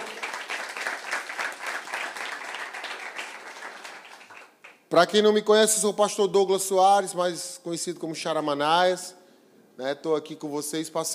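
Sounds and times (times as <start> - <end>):
church audience applauding during a morning service: 0.0 - 4.8
speech: 4.9 - 9.2, 9.8 - 11.1.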